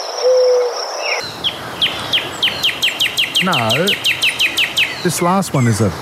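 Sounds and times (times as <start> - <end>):
low hooting call: 0.0 - 5.8
bird chirping: 0.0 - 5.9
soft hiss: 0.0 - 6.0
speech: 3.4 - 4.2, 5.0 - 6.0.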